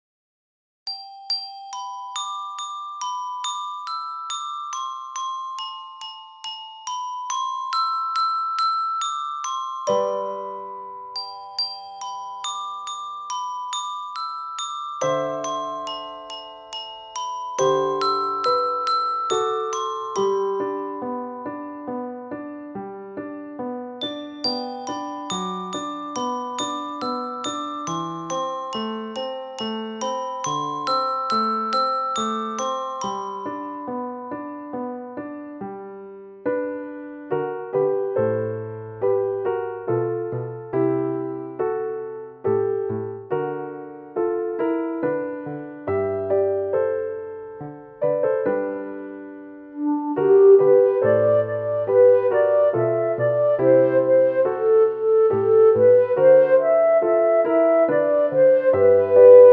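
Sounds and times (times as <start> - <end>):
child playing glockenspiel: 0.9 - 59.5.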